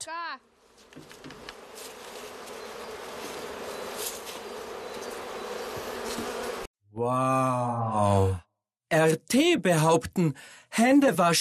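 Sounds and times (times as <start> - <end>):
speech: 0.0 - 1.5, 7.0 - 11.3
many bees buzzing: 0.5 - 6.7.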